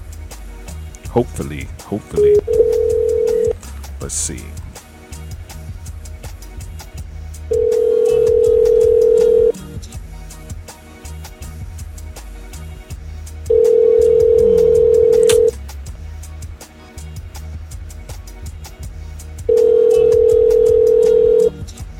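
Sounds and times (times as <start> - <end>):
speech: 1.2 - 2.8, 4.0 - 4.6
outgoing phone call ringback tone: 2.3 - 3.6, 7.5 - 9.6, 13.5 - 15.5, 19.5 - 21.5.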